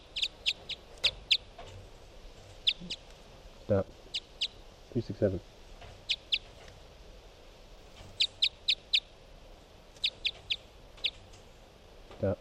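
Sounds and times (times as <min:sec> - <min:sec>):
bird chirping: 0:00.0 - 0:01.8, 0:02.4 - 0:03.1, 0:03.8 - 0:04.7, 0:05.9 - 0:06.7, 0:07.8 - 0:09.2, 0:09.9 - 0:11.5
faint hiss: 0:00.0 - 0:12.3
speech: 0:03.7 - 0:04.0, 0:04.9 - 0:05.5, 0:12.2 - 0:12.3.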